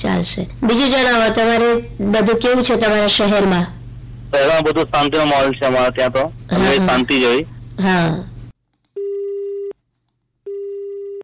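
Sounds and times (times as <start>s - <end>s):
speech: 0.0s - 8.3s
telephone busy tone after a call is cut off: 9.0s - 9.7s, 10.5s - 11.2s.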